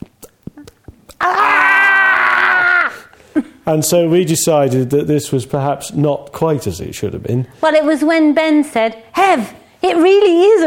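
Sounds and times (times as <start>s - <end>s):
speech: 1.2s - 1.5s, 3.7s - 10.6s
voice imitating the panicked wordless scream of boys: 1.2s - 3.1s
breaths: 2.9s - 3.6s, 9.6s - 9.8s.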